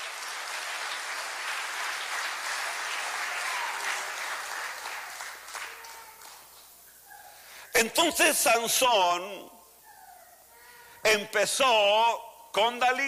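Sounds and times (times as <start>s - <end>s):
congregation applauding: 0.0s - 6.8s
speech: 7.8s - 9.5s, 11.1s - 13.0s.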